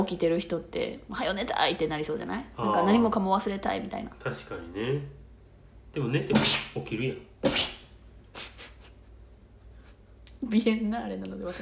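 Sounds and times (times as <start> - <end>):
speech: 0.0 - 5.2, 5.9 - 7.7, 10.5 - 11.6
person sneezing: 6.3 - 6.7, 7.4 - 8.9
soft breathy sniffs or exhales: 7.4 - 10.1.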